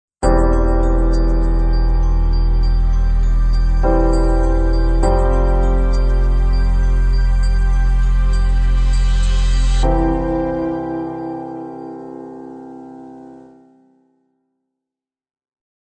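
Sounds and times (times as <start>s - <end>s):
inspirational opening ident logo music: 0.2s - 13.6s.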